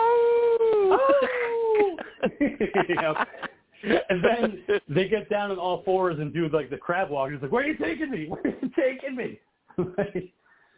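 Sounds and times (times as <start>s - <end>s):
person imitating a wolf howling at the moon: 0.0s - 2.0s
laughter: 0.7s - 4.9s, 7.8s - 9.0s, 9.8s - 10.3s
speech: 1.1s - 10.4s.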